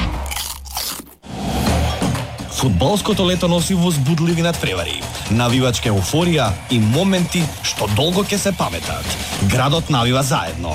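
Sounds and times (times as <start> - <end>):
air-popped unfried potato chips being bitten and chewed: 0.2 - 1.2
speech: 2.6 - 10.7.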